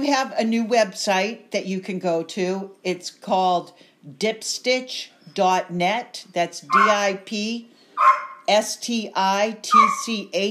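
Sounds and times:
speech: 0.0s - 10.4s
dog barking and yipping: 6.7s - 7.0s, 8.0s - 8.5s, 9.7s - 10.1s.

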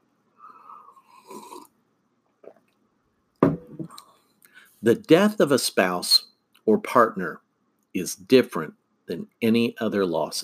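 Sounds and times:
gulp from a drink: 1.0s - 1.8s
slurping from a drink: 1.0s - 1.8s
speech: 4.8s - 10.4s.

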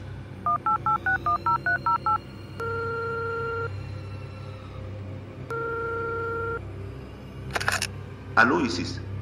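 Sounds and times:
phone ringing tones on the line: 0.5s - 3.7s, 5.5s - 6.6s
speech: 8.4s - 9.1s.

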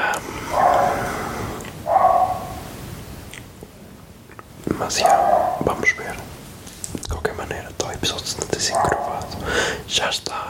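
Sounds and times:
dogs barking: 0.4s - 2.7s, 4.9s - 5.8s, 8.6s - 9.4s
speech: 4.8s - 5.3s, 7.9s - 10.4s.

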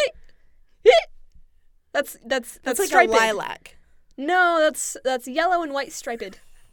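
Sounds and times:
hiccup: 0.8s - 1.2s
speech: 2.0s - 6.5s.

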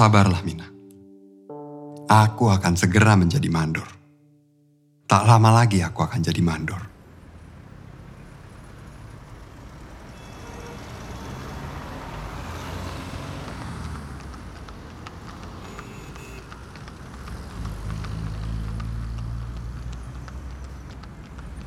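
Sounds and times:
speech: 0.0s - 0.7s, 2.1s - 4.0s, 5.1s - 6.9s
steady road traffic roar of passing vehicles: 6.9s - 21.6s.

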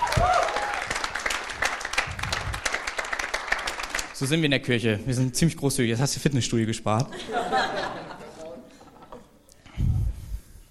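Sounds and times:
crowd applauding: 0.0s - 4.2s
speech: 4.2s - 8.0s
laughter: 7.1s - 9.0s.

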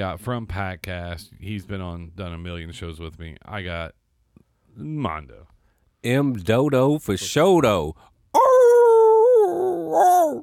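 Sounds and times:
speech: 0.0s - 4.0s, 4.8s - 8.6s, 9.9s - 10.4s
person imitating a dog howl: 8.4s - 10.4s.

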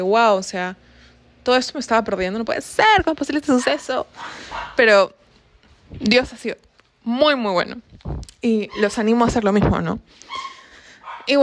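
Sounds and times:
speech: 0.0s - 5.2s, 5.9s - 10.5s, 11.2s - 11.4s
dogs barking: 3.5s - 4.9s, 8.6s - 9.1s, 10.2s - 11.4s
dog sustained whining bark: 3.6s - 4.8s, 8.7s - 9.0s, 10.3s - 11.4s.

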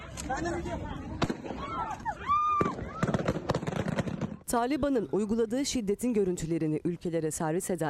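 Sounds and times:
speech: 0.3s - 2.3s, 4.5s - 7.8s
gunshots fired into the air by militants: 2.6s - 4.4s.

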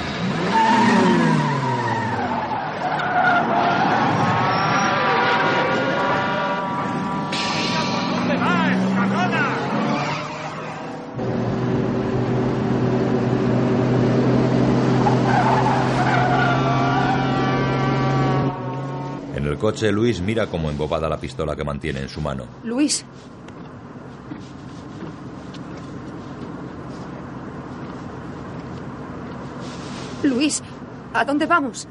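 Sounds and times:
tire squeals: 0.0s - 11.1s, 14.8s - 19.3s
car engine revving while driving wildly through heavy traffic: 0.0s - 21.0s
speech: 19.6s - 23.5s, 30.2s - 31.9s.

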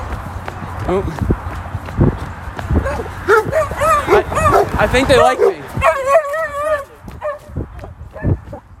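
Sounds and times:
speech: 0.9s - 1.3s, 4.8s - 5.6s
dog giving a high wavering whine-like yelp: 2.8s - 7.5s
short dog barks and yips: 2.8s - 8.5s.

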